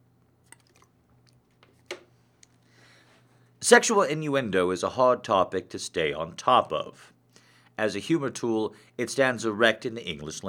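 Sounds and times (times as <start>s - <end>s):
low steady hum: 0.0s - 10.4s
person sipping water: 0.4s - 1.4s
gulp-like swallow of water: 0.5s - 1.4s
speech: 3.6s - 7.2s, 7.8s - 10.4s.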